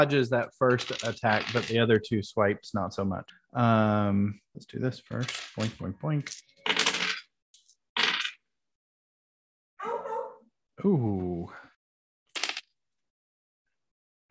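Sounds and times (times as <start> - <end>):
speech: 0.0 - 6.5, 10.8 - 11.6
dice clattering across a hard tabletop: 0.7 - 1.8, 5.1 - 8.4, 12.4 - 12.7.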